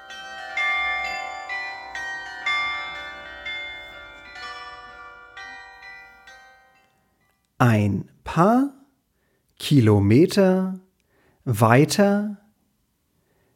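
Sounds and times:
church carillon bells playing a melody: 0:00.0 - 0:07.4
speech: 0:07.6 - 0:08.8, 0:09.6 - 0:10.8, 0:11.4 - 0:12.4.

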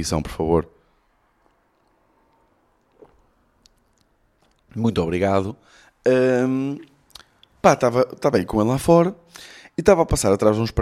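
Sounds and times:
speech: 0:00.0 - 0:00.8, 0:04.7 - 0:06.9, 0:07.6 - 0:10.8
faint hiss: 0:00.0 - 0:10.8
person sipping water: 0:01.0 - 0:04.8
swallowing: 0:01.0 - 0:04.8.

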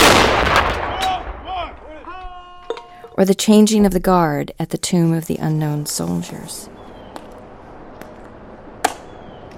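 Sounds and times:
booming cannon shot from a presidential salute battery: 0:00.0 - 0:01.8
speech: 0:03.2 - 0:06.8.

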